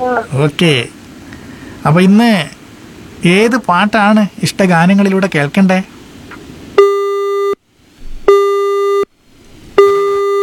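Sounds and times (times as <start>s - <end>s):
speech: 0.0s - 1.0s, 1.8s - 2.6s, 3.2s - 5.9s
telephone line tone beeps after a caller is cut off: 6.8s - 7.6s, 8.3s - 9.1s, 9.8s - 10.4s.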